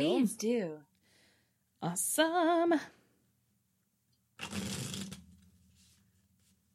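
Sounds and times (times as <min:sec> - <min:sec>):
speech: 0:00.0 - 0:00.9, 0:01.8 - 0:03.0, 0:04.4 - 0:05.2
deck of tarot cards being riffle-shuffled: 0:04.4 - 0:06.0.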